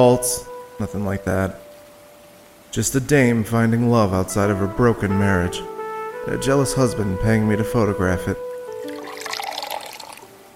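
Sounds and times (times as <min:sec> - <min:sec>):
speech: 0:00.0 - 0:01.6, 0:02.7 - 0:05.7, 0:06.3 - 0:08.4
liquor glugging and splashing into a glass: 0:08.7 - 0:10.3.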